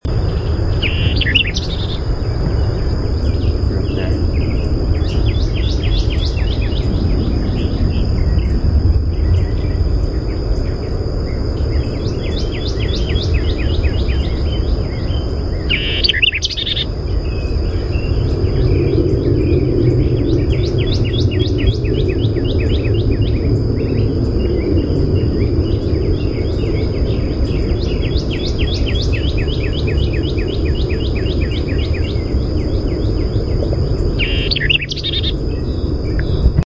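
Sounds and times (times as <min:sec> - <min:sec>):
White-eyed Vireo song: 0:00.0 - 0:36.6.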